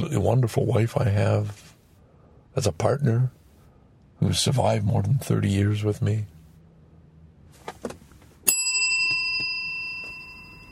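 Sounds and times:
speech: 0:00.0 - 0:01.7, 0:02.6 - 0:03.4, 0:04.2 - 0:06.3
small bell struck as gratitude bell: 0:08.5 - 0:10.7.

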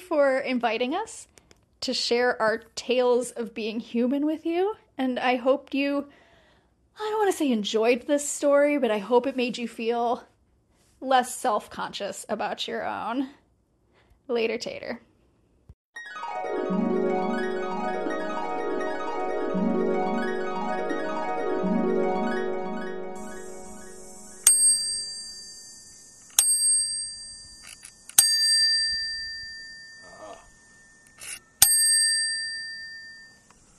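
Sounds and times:
speech: 0:00.1 - 0:06.2, 0:07.0 - 0:10.3, 0:11.0 - 0:13.4, 0:14.3 - 0:15.1
low tonal sound: 0:16.5 - 0:33.6
bicycle bell rung with spring pulled back: 0:24.4 - 0:33.5.

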